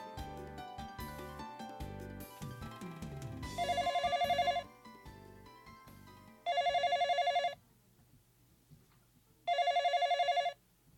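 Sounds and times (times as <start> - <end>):
soft music: 0.0 - 7.6
home telephone ringing with an incoming call: 3.5 - 4.7, 6.4 - 7.6, 9.5 - 10.6.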